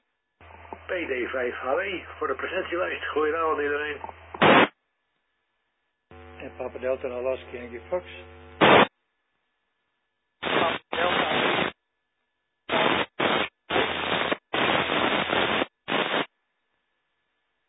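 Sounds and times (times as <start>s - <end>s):
radio static bursts: 0.4s - 4.8s, 6.2s - 8.9s, 10.4s - 11.8s, 12.7s - 16.3s
speech: 0.9s - 4.2s, 6.4s - 8.8s.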